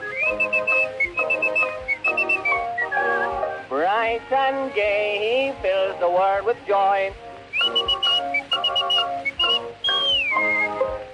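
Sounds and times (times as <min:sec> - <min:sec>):
boy whistling a melody on a 1905 recording: 0:00.0 - 0:03.4, 0:07.5 - 0:10.9
instrumental accompaniment on a 1905 recording: 0:00.0 - 0:04.4, 0:07.1 - 0:11.1
speech: 0:04.2 - 0:07.2.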